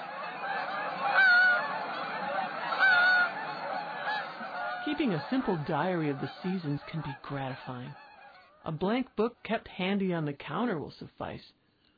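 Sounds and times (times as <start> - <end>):
Canada geese honking overhead: 0.0 - 9.4
speech: 4.9 - 8.0, 8.6 - 11.6.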